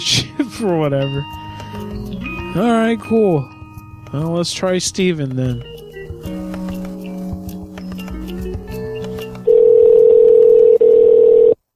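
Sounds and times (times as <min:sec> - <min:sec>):
speech: 0:00.0 - 0:06.4
telephone ringback tone of an unanswered outgoing call: 0:09.5 - 0:11.6.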